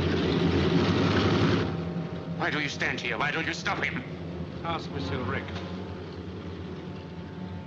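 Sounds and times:
airplane engine drone as plane departs: 0.0s - 7.6s
speech: 2.5s - 5.7s.

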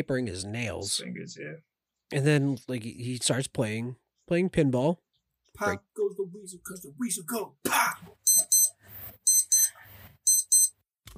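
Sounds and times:
speech: 0.0s - 8.2s
alarm beeping in shrill double pulses: 8.2s - 10.8s.

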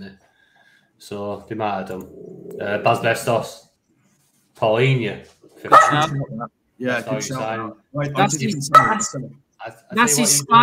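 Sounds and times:
speech: 1.0s - 3.7s, 4.6s - 10.6s
dog barking and yelping: 5.7s - 6.4s, 8.7s - 9.2s.

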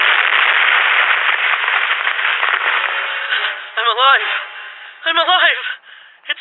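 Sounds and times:
police car exploding after falling into ravine: 0.0s - 5.1s
speech: 4.0s - 5.7s.

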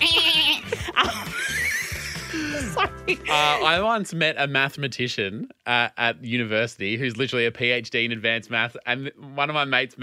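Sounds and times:
goat bleating loudly: 0.0s - 0.7s
laughter: 0.0s - 3.5s
speech: 2.6s - 10.0s.

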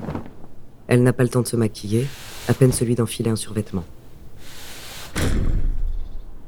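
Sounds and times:
speech: 0.9s - 4.0s
fist pounding on apartment door in Paris: 4.4s - 6.0s.

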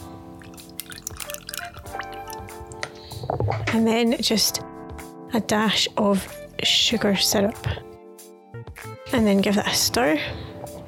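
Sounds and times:
fresh lime juice dripping and trickling into rum: 0.4s - 3.1s
speech: 3.7s - 4.6s, 5.3s - 7.8s, 9.2s - 10.4s.

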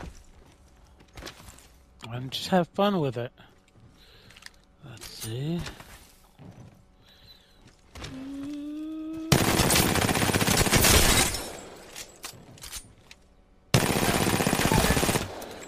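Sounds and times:
speech: 2.1s - 3.5s, 5.2s - 5.8s
rapid automatic gunfire from a gun in a video game: 9.3s - 11.2s, 13.7s - 15.6s.

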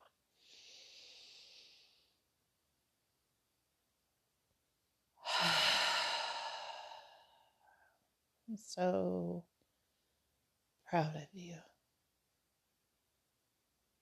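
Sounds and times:
deep breath in: 0.4s - 2.2s, 5.2s - 8.0s
speech: 8.5s - 9.5s, 10.9s - 11.7s.

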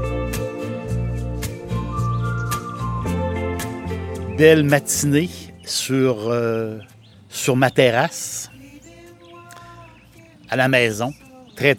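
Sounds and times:
birds chirping on a home terrace in the morning: 1.2s - 11.7s
speech: 4.4s - 8.6s, 10.5s - 11.7s.

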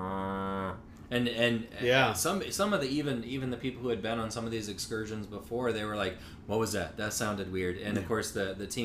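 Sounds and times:
voice imitating the low rumble of cows mooing: 0.0s - 0.9s
speech: 1.1s - 8.8s.

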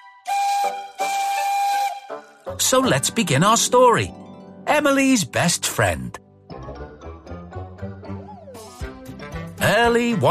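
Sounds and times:
steam engine whistle blasts: 0.0s - 2.4s
speech: 0.6s - 1.2s, 2.5s - 4.2s, 4.8s - 6.2s, 9.7s - 10.2s.

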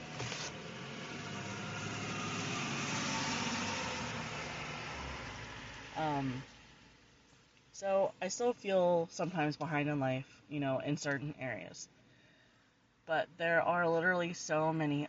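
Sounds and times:
bus driving past: 0.0s - 7.2s
speech: 6.0s - 6.5s, 7.8s - 12.0s, 13.1s - 15.0s.

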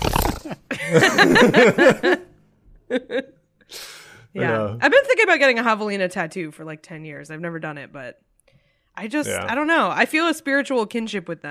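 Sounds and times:
laughter: 0.4s - 2.3s, 9.2s - 9.5s
speech: 0.5s - 2.3s, 2.9s - 8.3s, 9.0s - 11.4s
person vocally imitating a little pig passing with Doppler effect: 4.4s - 4.8s, 9.2s - 9.5s.

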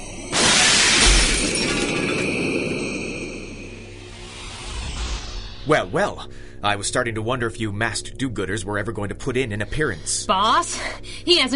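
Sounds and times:
skylight glass shattering: 0.0s - 4.0s
tinkling scattering shards of skylight glass: 0.0s - 4.0s
speech: 5.7s - 11.5s.

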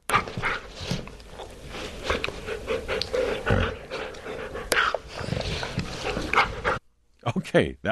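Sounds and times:
dog play-panting: 1.7s - 6.8s
speech: 7.5s - 7.9s.

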